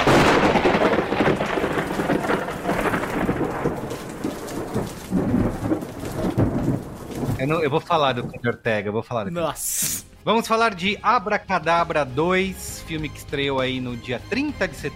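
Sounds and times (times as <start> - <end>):
loud rolling rumble of thunder: 0.0 - 8.4
steady heavy rain: 0.0 - 8.4
speech: 7.5 - 14.9.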